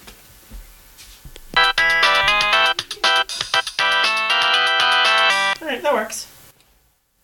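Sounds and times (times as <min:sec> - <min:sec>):
phone ringtone of bright electronic beeping notes: 0:01.6 - 0:05.6
speech: 0:06.0 - 0:06.3.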